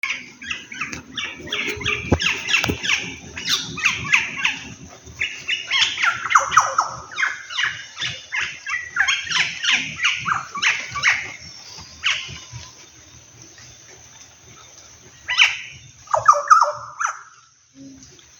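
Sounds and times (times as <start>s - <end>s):
green oriole: 0.0s - 18.3s.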